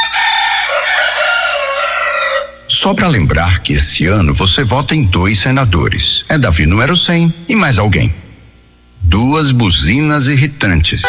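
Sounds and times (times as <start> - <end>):
two roosters crowing: 0.0 - 2.7
speech: 2.8 - 8.2, 9.1 - 11.0.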